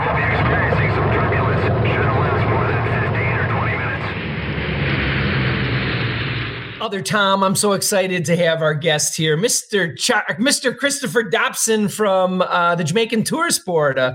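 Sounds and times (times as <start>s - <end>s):
airplane flying overhead with whining engines: 0.0s - 6.8s
speech: 6.9s - 14.1s.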